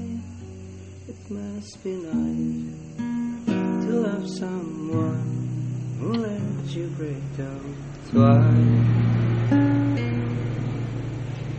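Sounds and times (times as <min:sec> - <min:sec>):
speech: 0:01.3 - 0:03.0, 0:03.9 - 0:05.4, 0:06.0 - 0:09.1
motorcycle engine revving: 0:03.6 - 0:11.5.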